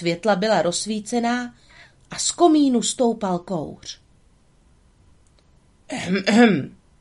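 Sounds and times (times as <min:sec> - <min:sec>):
speech: 0:00.0 - 0:04.0, 0:05.9 - 0:06.8
man clearing his throat: 0:05.9 - 0:06.7.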